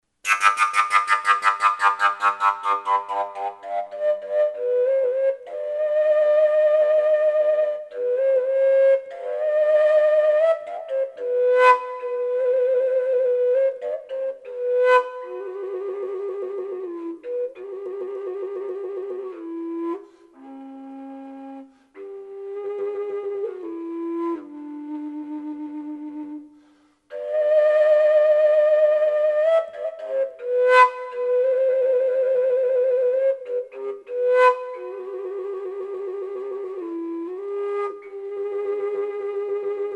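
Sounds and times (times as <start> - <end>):
fujara note G: 0.2 - 39.9.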